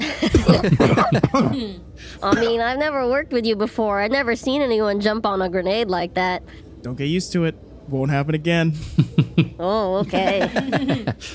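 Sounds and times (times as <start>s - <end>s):
laughter: 0.0s - 1.7s, 9.0s - 11.2s
voice acting a fit of coughing after a dry bite: 0.0s - 2.6s
speech: 0.2s - 11.3s.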